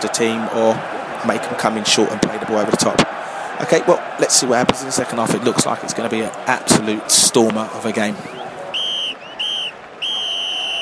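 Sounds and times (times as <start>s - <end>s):
speech: 0.0s - 8.4s
crowd murmur: 0.0s - 10.8s
referee's whistle blasts: 8.3s - 10.8s.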